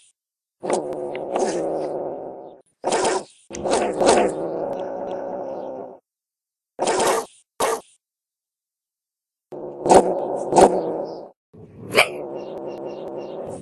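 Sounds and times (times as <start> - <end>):
wildcat giving harsh droning yowls: 0.7 - 6.0, 9.5 - 13.6.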